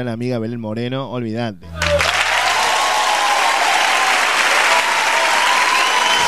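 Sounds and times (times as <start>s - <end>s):
speech: 0.0s - 2.2s
crowd applauding: 1.8s - 6.2s.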